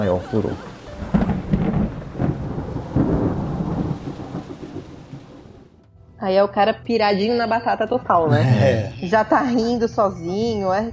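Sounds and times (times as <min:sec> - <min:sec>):
laughter: 0:00.0 - 0:00.9, 0:08.3 - 0:09.6
speech: 0:00.0 - 0:01.2, 0:06.2 - 0:10.9
steady heavy rain: 0:00.0 - 0:05.7
deep rolling thunder during a heavy storm: 0:01.0 - 0:05.7.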